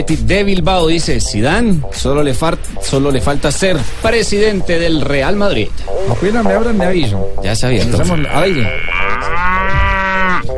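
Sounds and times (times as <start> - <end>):
speech: 0.0 - 9.8
cow mooing: 8.0 - 10.5.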